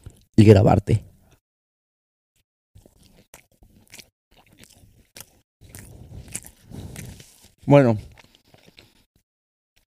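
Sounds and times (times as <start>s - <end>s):
speech: 0.4s - 1.1s, 7.7s - 8.1s
person biting and chewing bread: 2.8s - 9.2s.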